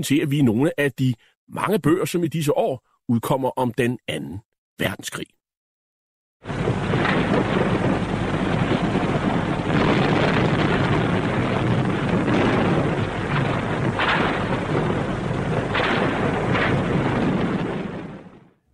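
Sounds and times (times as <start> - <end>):
speech: 0.0 - 5.4
heavy naval gunfire from a battleship: 6.4 - 18.5.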